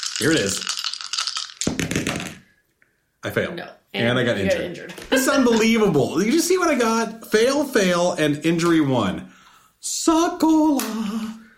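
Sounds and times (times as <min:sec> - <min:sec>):
dice rolling onto a hard surface: 0:00.0 - 0:02.4
speech: 0:00.2 - 0:00.7, 0:03.2 - 0:11.4.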